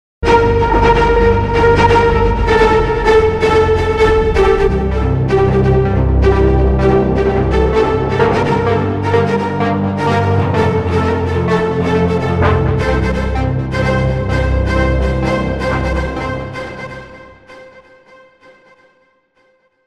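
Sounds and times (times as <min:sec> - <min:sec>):
chopped cello rhythm: 0:00.2 - 0:17.8.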